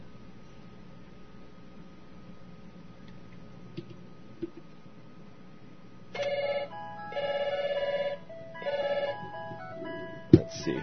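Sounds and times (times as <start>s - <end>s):
low hum: 0.0s - 10.8s
synthetic Skype outgoing call ringing tone: 6.2s - 10.8s.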